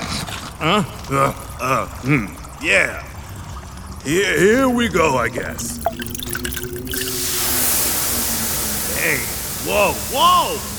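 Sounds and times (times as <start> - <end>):
speech: 0.6 - 3.1, 4.0 - 6.0, 9.0 - 10.7
syrup being poured onto an hourglass: 5.4 - 7.9.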